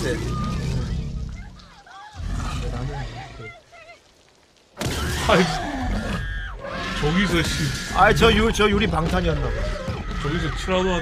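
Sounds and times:
speech: 0.0s - 0.5s, 5.3s - 5.7s, 7.0s - 11.0s
dinosaur roar made from mixed animal sounds: 0.0s - 1.6s, 2.2s - 3.5s, 4.8s - 11.0s.

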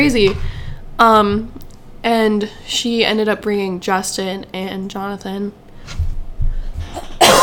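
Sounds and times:
speech: 0.0s - 6.0s
person coughing in a coughing fit: 6.9s - 7.4s.

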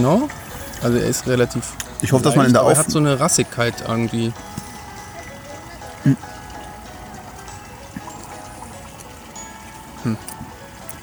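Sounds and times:
speech: 0.0s - 4.7s, 6.0s - 6.3s, 10.0s - 10.3s
water trickling and splashing from a sewer drain: 0.0s - 11.0s.

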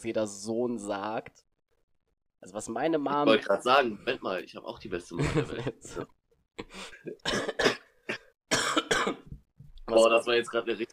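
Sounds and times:
speech: 0.0s - 1.5s, 2.4s - 7.7s, 9.9s - 10.9s
laughter: 5.2s - 6.1s
two people coughing: 7.2s - 9.3s.

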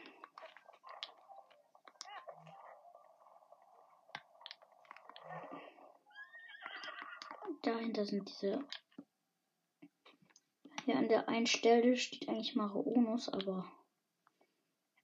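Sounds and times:
video game horse neighing: 5.1s - 7.5s
speech: 7.6s - 8.8s, 11.0s - 13.8s.

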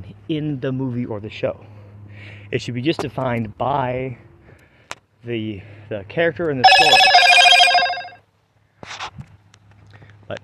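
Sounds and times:
speech: 0.3s - 4.3s, 5.2s - 7.2s
phone ringtone with a bright harmonic tone: 6.6s - 8.2s.

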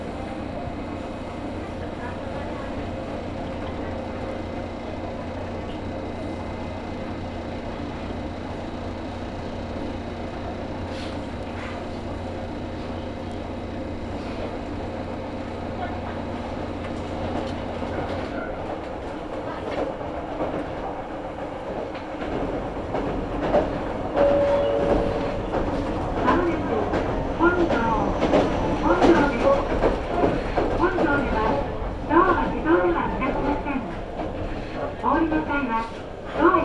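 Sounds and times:
passengers talking inside a train: 0.0s - 36.6s
train rumble and hum on a Japanese line: 0.0s - 36.6s
brief chime inside a train: 24.2s - 25.4s.

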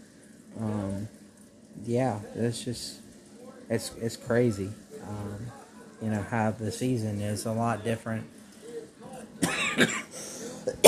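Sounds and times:
speech: 1.9s - 3.0s, 3.7s - 8.4s, 9.8s - 10.1s
person with a bad cough coughing: 9.4s - 10.8s.

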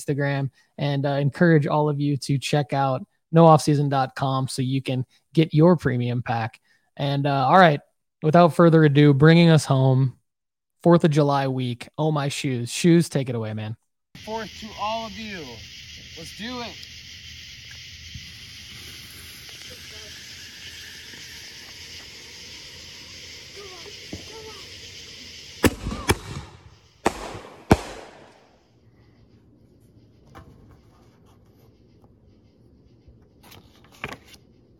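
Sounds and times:
speech: 0.0s - 10.2s, 10.8s - 16.9s
fireworks hissing fizz as they burn: 14.2s - 28.8s.

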